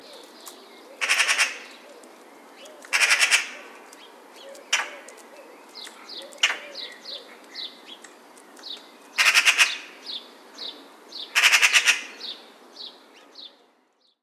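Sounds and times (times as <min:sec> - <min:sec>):
magpie call: 0:01.0 - 0:01.8, 0:02.9 - 0:03.8, 0:04.7 - 0:05.1, 0:06.3 - 0:07.3, 0:09.2 - 0:10.0, 0:11.3 - 0:12.3.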